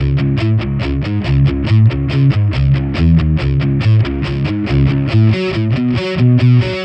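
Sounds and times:
distorted guitar in C-sharp minor at 140 BPM: 0.0 - 6.8.

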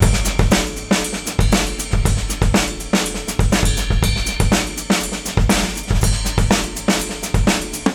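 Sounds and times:
off-mike dance drums: 0.0 - 7.9
off-mike dance ride cymbal: 0.0 - 7.9.

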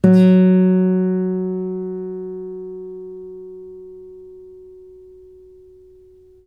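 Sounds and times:
acoustic guitar note F sharp 2: 0.0 - 6.4.

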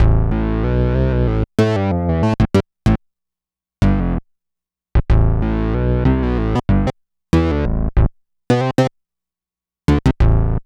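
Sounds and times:
bass: 0.0 - 3.0, 3.8 - 4.3, 5.0 - 8.9, 9.9 - 10.6.

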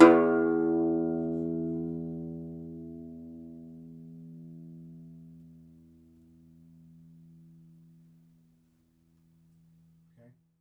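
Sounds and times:
segundo domra plucked strings: 0.0 - 5.6.

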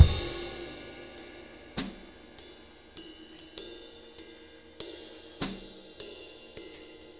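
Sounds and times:
laid back drum loop in six-eight time: 0.0 - 2.5.

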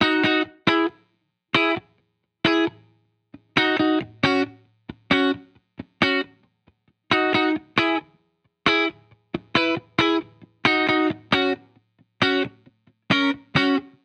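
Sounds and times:
70s-style guitar in key B at 135 BPM: 0.0 - 14.0.

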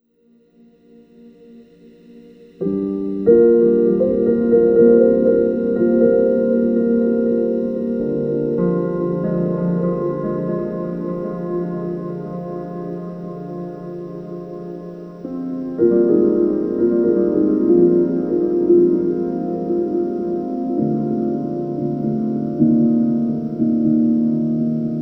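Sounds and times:
dirty piano: 0.2 - 24.9.

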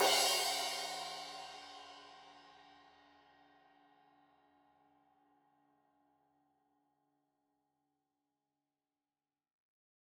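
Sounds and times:
15in crash cymbal hit on edge: 0.0 - 1.6.

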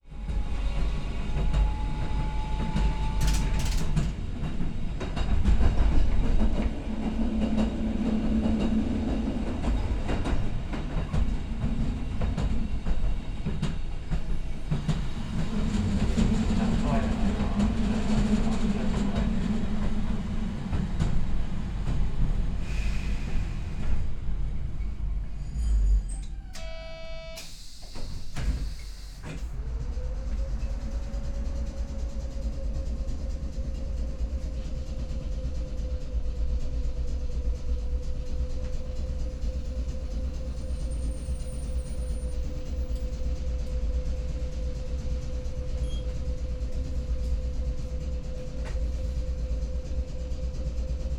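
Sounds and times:
city tram interior ambience: 0.0 - 51.1.

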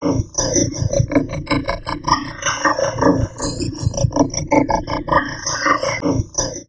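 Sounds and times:
heavily processed vocoded drum loops: 0.1 - 6.6.

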